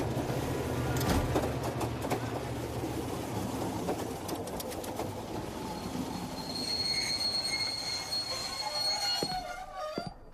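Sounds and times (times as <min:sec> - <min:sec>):
train pulling into a station: 0:00.0 - 0:10.3
train wheels squealing against the rails: 0:05.5 - 0:10.3
train brake screeches: 0:05.6 - 0:10.3.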